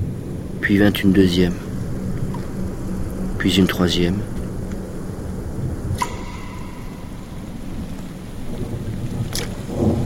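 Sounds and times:
heavy torrential rain pouring during a thunderstorm: 0:00.0 - 0:10.0
speech: 0:00.6 - 0:01.6, 0:03.4 - 0:04.3
sharp whooshes: 0:05.9 - 0:08.6.

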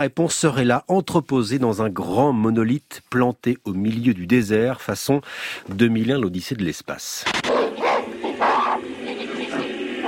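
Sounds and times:
speech: 0:00.0 - 0:07.5
apes shrieking and hooting in a film scene: 0:07.4 - 0:10.0.

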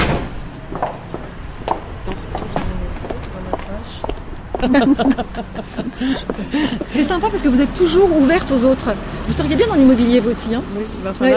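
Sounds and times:
heavy armored door opening and closing: 0:00.0 - 0:01.2
voices murmuring faintly: 0:01.8 - 0:11.3
laughter: 0:04.6 - 0:07.4
speech: 0:04.6 - 0:11.3.

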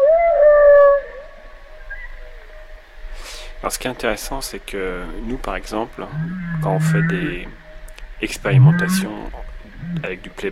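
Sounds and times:
whale call: 0:00.0 - 0:02.6, 0:06.0 - 0:07.7, 0:08.4 - 0:10.2
speech: 0:03.6 - 0:07.6, 0:08.2 - 0:10.5.

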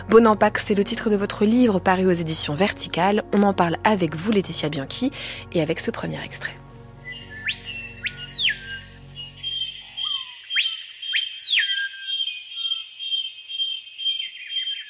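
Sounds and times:
speech: 0:00.1 - 0:06.6
bird whistling calls: 0:07.0 - 0:14.8.

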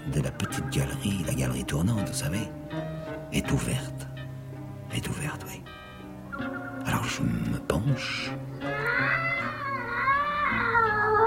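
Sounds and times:
speech: 0:00.1 - 0:04.1, 0:04.9 - 0:05.8, 0:06.4 - 0:09.2
cat yowling: 0:08.6 - 0:11.2.

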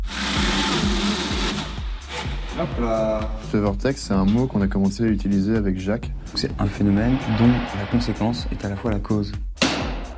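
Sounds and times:
power drill drilling into material: 0:00.0 - 0:02.3
speech: 0:02.6 - 0:09.5.

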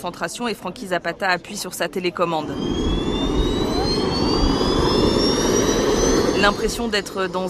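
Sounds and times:
speech: 0:00.0 - 0:03.2, 0:06.4 - 0:07.4
five small jet turbines of a hovering platform roaring: 0:01.6 - 0:07.4.

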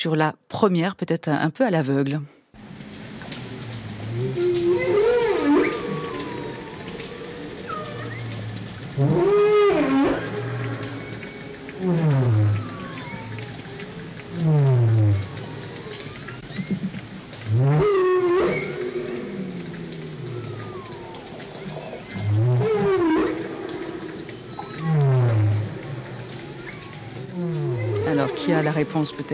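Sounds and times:
speech: 0:00.0 - 0:02.4, 0:09.0 - 0:09.4, 0:28.9 - 0:29.3
low watery hum: 0:02.6 - 0:29.3
humpback whale song recorded underwater: 0:03.2 - 0:29.3.

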